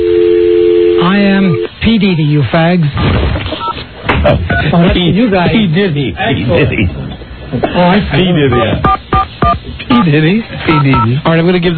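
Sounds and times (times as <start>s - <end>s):
man talking over a narrow phone-like line: 0.9s - 2.2s, 8.3s - 8.8s, 9.9s - 11.7s
speech: 2.0s - 3.5s, 4.2s - 8.9s, 10.0s - 11.7s
touch-tone dialing beeps from a telephone keypad: 8.5s - 10.1s, 10.7s - 11.1s.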